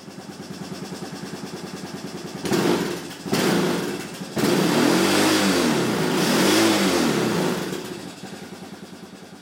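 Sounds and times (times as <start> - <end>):
2000 Honda Recon 250 ATV engine electric starting and revving: 0.2 - 9.4.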